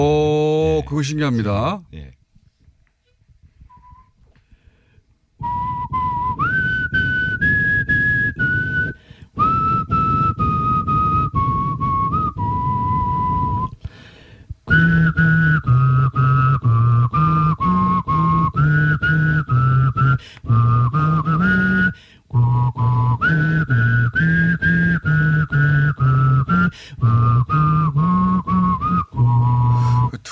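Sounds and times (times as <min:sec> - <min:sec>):
speech: 0:00.0 - 0:02.2
person whistling a melody in two-note harmony: 0:03.7 - 0:04.2, 0:05.4 - 0:13.8, 0:14.7 - 0:30.2.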